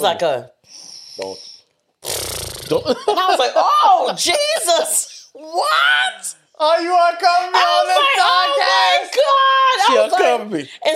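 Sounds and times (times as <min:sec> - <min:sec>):
speech: 0:00.0 - 0:10.9
person imitating loud snoring with the voice: 0:02.0 - 0:02.9.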